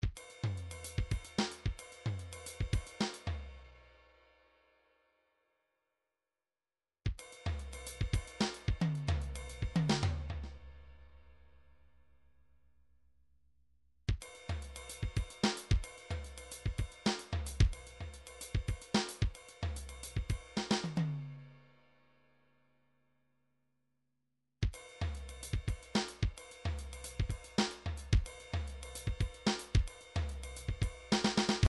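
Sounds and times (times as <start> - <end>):
midi drums: 0.0 - 3.6, 7.1 - 10.6, 14.1 - 21.3, 24.6 - 31.6.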